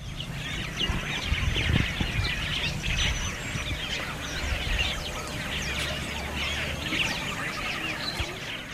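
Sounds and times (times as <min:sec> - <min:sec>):
loud chirping birdsong from many birds by a canal: 0:00.0 - 0:08.7
low rumbles: 0:00.0 - 0:08.7.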